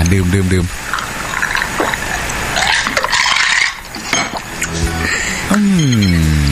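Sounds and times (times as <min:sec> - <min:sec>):
speech: 0:00.1 - 0:00.8, 0:05.8 - 0:06.3
beer poured into a glass with a gurgle: 0:00.8 - 0:04.7.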